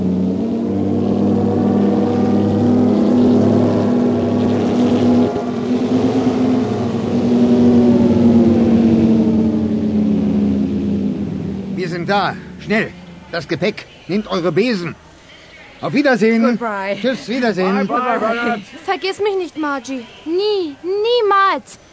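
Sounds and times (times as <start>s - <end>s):
car engine revving hard and roaring: 0.0s - 15.2s
speech: 12.1s - 15.1s, 15.8s - 21.8s.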